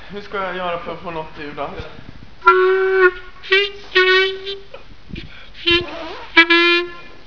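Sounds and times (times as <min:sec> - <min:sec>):
clarinet: 0:02.4 - 0:04.8, 0:05.6 - 0:07.2.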